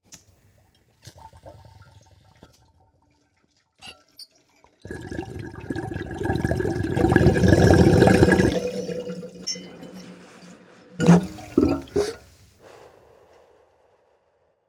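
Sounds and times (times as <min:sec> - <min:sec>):
bong water bubbling as someone takes a hit: 0:04.9 - 0:12.4.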